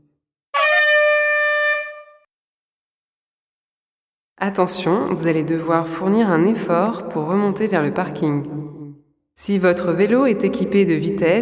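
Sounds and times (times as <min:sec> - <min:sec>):
signal air horn blast telling cyclists on a guided ride to stop: 0:00.5 - 0:02.2
speech: 0:04.4 - 0:08.6, 0:09.4 - 0:11.4.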